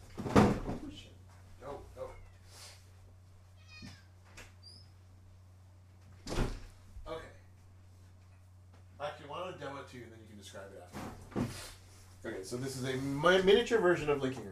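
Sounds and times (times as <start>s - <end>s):
cat meowing: 2.0s - 2.6s, 3.5s - 4.2s
speech: 9.6s - 14.5s.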